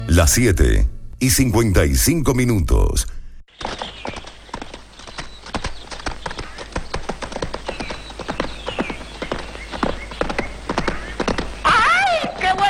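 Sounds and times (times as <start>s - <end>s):
speech: 0.2s - 3.7s
hooves of a ridden horse clip-clopping: 3.5s - 12.6s.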